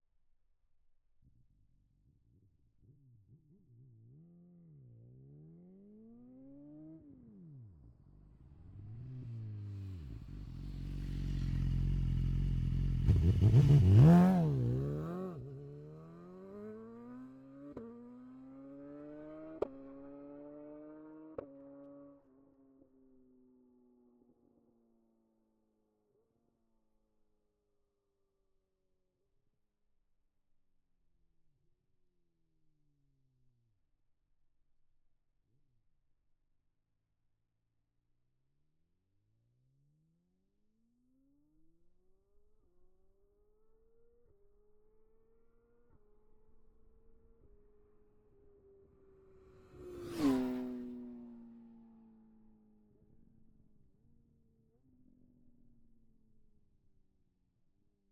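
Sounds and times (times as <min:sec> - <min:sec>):
BMW S1000RR HP4 2012 motorcycle approaching fast, stopping and passing by: 0:03.4 - 0:25.2, 0:43.6 - 0:56.0.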